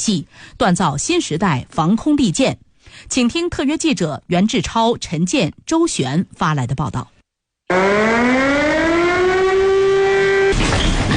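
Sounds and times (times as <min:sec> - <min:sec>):
speech: 0:00.0 - 0:07.1
military alert siren wailing: 0:07.7 - 0:10.6.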